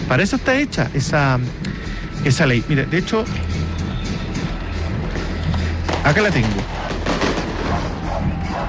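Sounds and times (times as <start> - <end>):
speech: 0.1 - 3.6, 6.1 - 6.8
fireworks exploding: 4.2 - 8.5.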